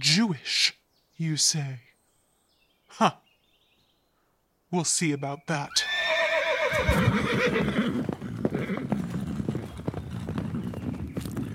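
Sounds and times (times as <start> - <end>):
speech: 0.2 - 0.6, 1.2 - 1.9, 2.9 - 3.2, 4.7 - 6.0, 6.7 - 8.2
horse whinny: 5.7 - 10.4
hoofbeats of a king's army horses riding away: 6.7 - 11.5.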